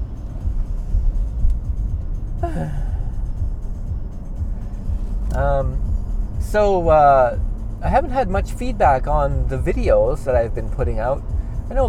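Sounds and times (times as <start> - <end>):
car driving on a country road: 0.0 - 11.8
sighing vocal sounds: 2.4 - 3.2
speech: 2.6 - 2.9, 5.4 - 5.9, 6.5 - 11.8.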